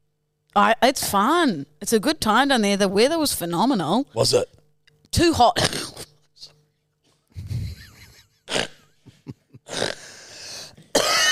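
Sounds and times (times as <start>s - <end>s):
speech: 0.6s - 6.0s
person coughing: 10.8s - 11.3s.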